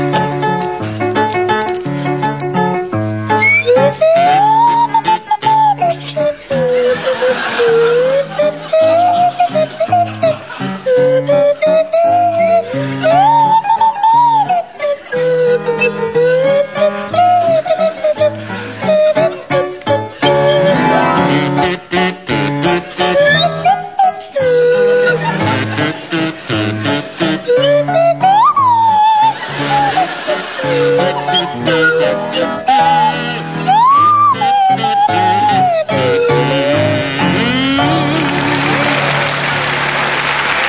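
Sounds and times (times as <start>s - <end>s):
steady musical accompaniment: 0.0s - 40.6s
swanee whistle swooping through a jaunty tune: 3.4s - 19.6s, 20.2s - 21.4s, 23.2s - 25.6s, 27.2s - 36.9s
listeners chuckling: 3.4s - 21.2s, 23.3s - 36.9s
kazoo buzzing: 3.4s - 39.2s.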